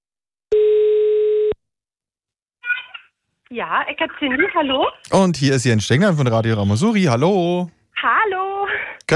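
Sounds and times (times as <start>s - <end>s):
telephone ringing tone while placing a call: 0.5s - 1.6s
speech: 3.5s - 8.4s.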